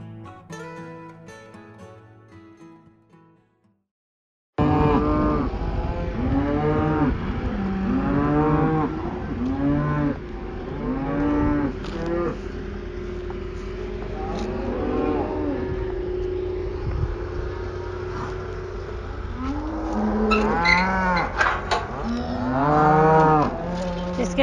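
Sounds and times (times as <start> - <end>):
music: 0.0 - 3.8
many cattle mooing inside a cow shed: 4.6 - 13.1, 13.7 - 16.3, 19.4 - 24.4
steady low mechanical hum in a cow shed: 4.6 - 24.4.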